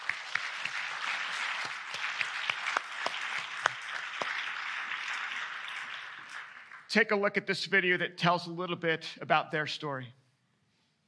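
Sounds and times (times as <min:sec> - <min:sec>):
audience applauding: 0:00.0 - 0:07.0
speech: 0:06.9 - 0:10.2.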